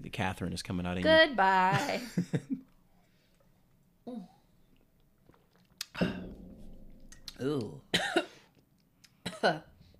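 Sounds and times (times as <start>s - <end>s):
speech: 0.1s - 2.6s, 7.4s - 8.2s, 9.4s - 9.7s
person coughing after a drink went down the wrong way: 7.9s - 8.4s, 9.2s - 9.6s.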